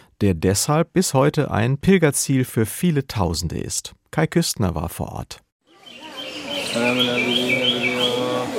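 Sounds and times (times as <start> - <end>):
speech: 0.2 - 6.0, 6.7 - 7.7
birds chirping under the Bodhi tree in India: 5.6 - 8.5
Buddhist monks chanting together: 6.5 - 8.5.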